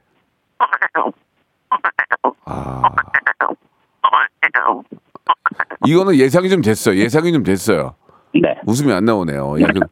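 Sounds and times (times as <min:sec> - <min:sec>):
person imitating a frog croak using tongue and throat: 0:00.6 - 0:06.0
speech: 0:05.8 - 0:08.0, 0:08.7 - 0:09.9.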